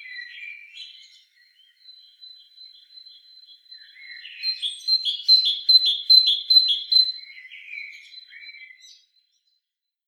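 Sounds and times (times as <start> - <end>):
great tit Parus major singing: 5.1 - 7.1.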